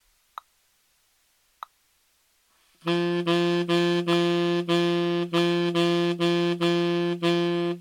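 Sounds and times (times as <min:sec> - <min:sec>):
saxophone playing triplet eighth notes: 0:02.8 - 0:07.8.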